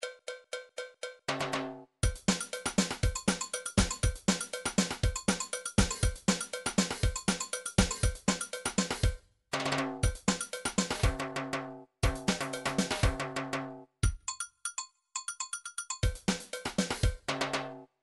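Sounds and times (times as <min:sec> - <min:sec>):
MIDI drums playing a rhumba rhythm: 0:01.3 - 0:14.2, 0:16.0 - 0:17.8.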